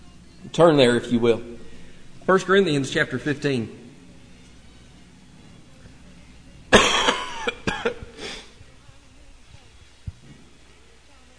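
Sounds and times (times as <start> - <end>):
speech: 0.6 - 1.6, 2.3 - 3.8
man coughing while preaching a sermon: 6.7 - 8.4.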